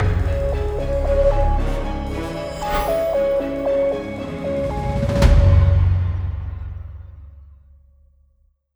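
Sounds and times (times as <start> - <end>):
musical break: 0.0 - 6.9.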